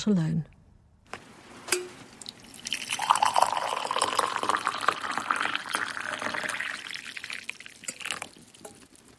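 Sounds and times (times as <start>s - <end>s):
tea poured from an old red teapot into a cup: 2.2s - 9.1s.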